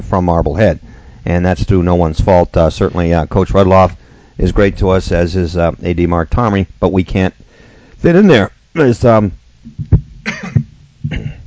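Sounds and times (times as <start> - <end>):
speech: 0.0 - 7.4, 8.0 - 11.4
sportscaster coughing and clearing throat: 10.2 - 11.4.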